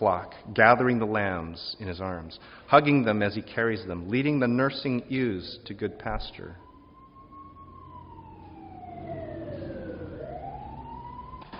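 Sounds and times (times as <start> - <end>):
speech: 0.0 - 6.6
emergency vehicle siren passing: 6.0 - 11.5
road traffic rumble: 6.8 - 11.5.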